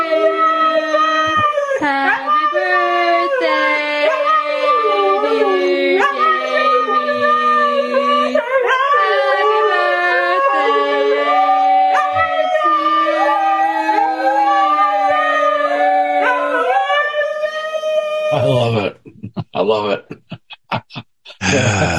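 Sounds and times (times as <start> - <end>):
dog howling along to a birthday song: 0.0 - 18.8
people singing a birthday song: 1.8 - 16.8
laughter: 18.4 - 21.9.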